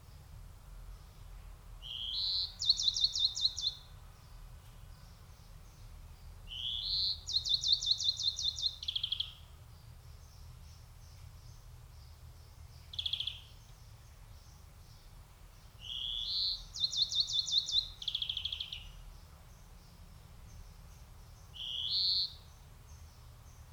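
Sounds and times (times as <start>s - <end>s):
European greenfinch Chloris chloris twittering and trilling: 1.8s - 3.8s, 6.5s - 9.4s, 12.9s - 13.6s, 15.8s - 19.0s, 21.5s - 22.4s.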